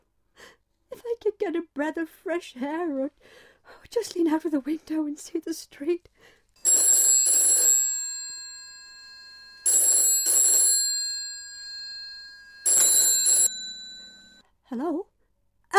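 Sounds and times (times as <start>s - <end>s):
speech: 1.5s - 6.8s, 14.7s - 15.1s
old-fashioned telephone bell ringing: 6.6s - 14.4s.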